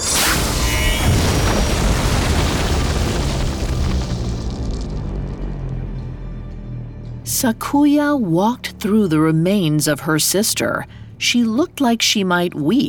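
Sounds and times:
explosion of a stone goddess shattering into thousands of pebbles: 0.0s - 5.6s
speech: 7.4s - 12.8s.

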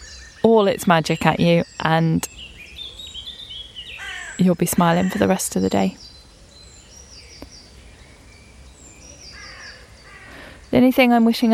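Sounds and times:
spring dawn chorus of resident and migrant birds in deciduous oak woodland in the West Country: 0.0s - 11.5s
steady outdoor noise: 0.0s - 11.5s
speech: 0.4s - 2.5s, 4.4s - 6.1s, 10.8s - 11.5s
harsh crow-like caws: 4.0s - 4.4s, 9.4s - 10.6s.

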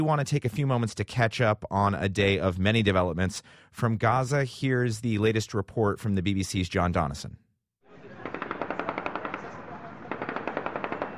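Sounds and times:
speech: 0.0s - 7.4s
celebratory automatic gunfire outdoors: 8.0s - 11.1s.

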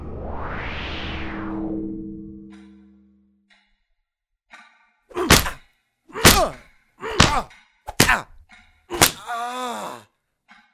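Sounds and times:
pained grunts or moans: 5.1s - 10.1s
person groaning: 5.1s - 10.1s
punches hitting someone's face: 5.2s - 5.6s, 6.2s - 8.3s, 8.9s - 9.7s.

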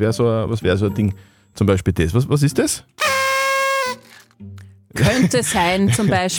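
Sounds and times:
speech: 0.0s - 3.1s, 4.4s - 6.3s
toy horn being blown: 3.0s - 4.4s.

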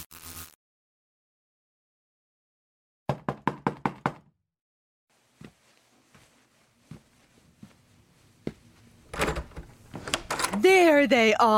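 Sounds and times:
knocking on a wooden door: 3.1s - 4.3s
faint shuffling: 5.1s - 9.1s
speech: 11.0s - 11.5s.

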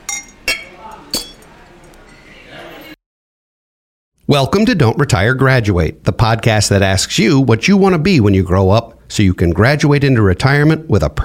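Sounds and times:
glasses clinking in a toast: 0.0s - 3.0s
murmur of voices: 0.6s - 3.0s
speech: 4.3s - 11.2s.

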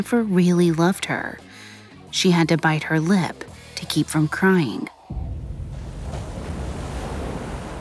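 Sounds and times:
speech: 0.0s - 1.5s, 2.1s - 5.0s
wind buffeting the microphone: 5.1s - 7.7s
Lake Erie waves washing against a thin rocky beach: 5.7s - 7.7s.

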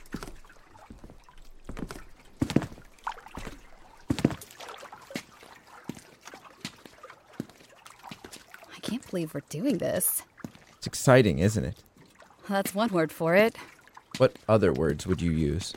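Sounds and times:
faint water sloshing: 0.0s - 15.7s
hollow wooden knocks and thumps from a small rowboat as people clamber aboard: 3.4s - 4.5s
speech: 9.1s - 10.3s, 10.9s - 11.8s, 12.5s - 15.7s.

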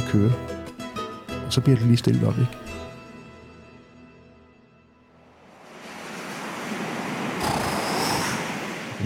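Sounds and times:
speech: 0.1s - 0.5s, 1.5s - 2.6s
sea waves surging against building foundation: 5.5s - 9.0s.

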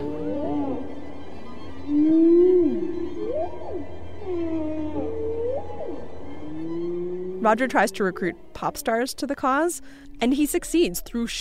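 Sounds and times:
recorded whale song: 0.0s - 9.0s
speech: 7.4s - 11.3s.

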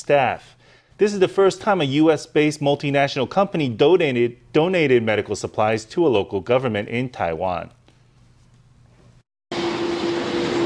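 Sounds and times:
speech: 0.0s - 7.8s
airplane jet roar while descending to land: 9.5s - 10.6s.

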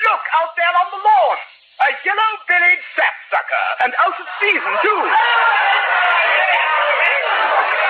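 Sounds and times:
speech: 0.4s - 7.6s
crowd of bird lovers rushing out with overlapping voices and commotion: 4.0s - 7.8s.

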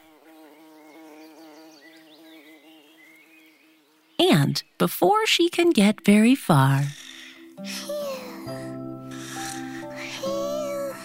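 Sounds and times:
bumblebees buzzing in a flower garden: 0.0s - 4.2s, 6.1s - 11.0s
faint birdsong chirps: 0.7s - 4.8s, 6.6s - 11.0s
speech: 4.2s - 7.0s, 7.6s - 8.6s.

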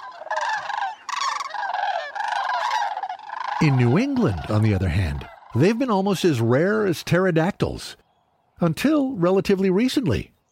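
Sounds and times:
flock of sandhill cranes calling in New Mexico: 0.0s - 6.3s
speech: 3.6s - 8.0s, 8.6s - 10.3s.

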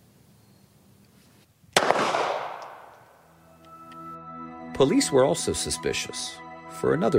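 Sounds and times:
handgun fired after loading magazine and racking slide: 1.8s - 3.2s
speech: 4.8s - 7.1s.

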